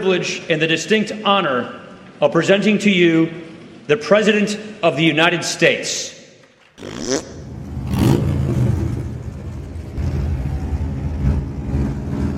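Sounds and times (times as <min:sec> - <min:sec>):
speech: 0:00.0 - 0:06.2, 0:06.8 - 0:07.2
Harley-Davidson motorcycle engine revving on the White House front lawn: 0:06.8 - 0:12.3.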